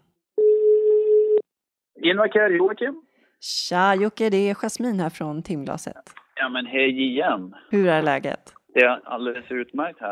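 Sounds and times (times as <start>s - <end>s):
electronic telephone ringback tone of an outgoing call: 0.4s - 1.4s
speech: 2.0s - 10.1s.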